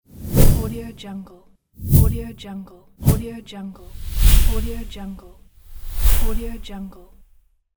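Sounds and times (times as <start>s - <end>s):
swoosh transitions: 0.1s - 1.0s, 1.8s - 2.4s, 3.0s - 7.2s.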